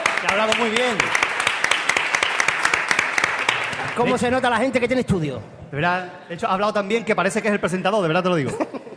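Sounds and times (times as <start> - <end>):
crowd applauding: 0.0 - 4.5
speech: 0.2 - 1.3, 4.0 - 8.8
laughter: 8.4 - 8.9.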